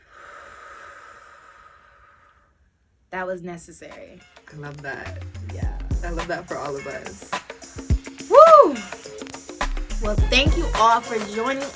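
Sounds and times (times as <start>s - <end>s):
deep inhale and exhale during a group breathing exercise: 0.0s - 2.9s
speech: 3.1s - 7.4s, 10.0s - 11.7s.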